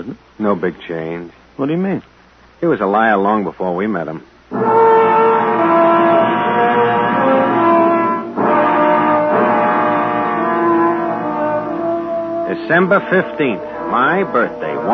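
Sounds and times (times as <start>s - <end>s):
speech: 0.0s - 4.8s, 12.6s - 14.9s
car engine humming: 4.5s - 14.9s.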